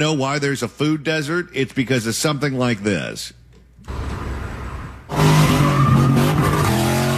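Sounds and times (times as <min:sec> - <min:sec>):
speech: 0:00.0 - 0:04.0
car engine revving: 0:03.9 - 0:07.1
car tires squealing doing donuts: 0:05.1 - 0:07.1.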